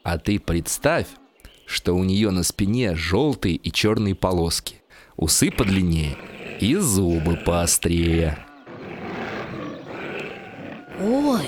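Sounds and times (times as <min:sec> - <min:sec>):
speech: 0:00.1 - 0:08.5, 0:11.0 - 0:11.4
tiger roaring: 0:05.3 - 0:11.4.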